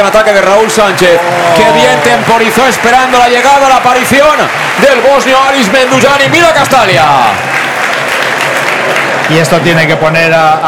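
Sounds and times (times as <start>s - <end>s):
speech: 0.0s - 7.6s, 9.3s - 10.6s
big stadium crowd roaring in applause and cheering: 0.0s - 10.6s.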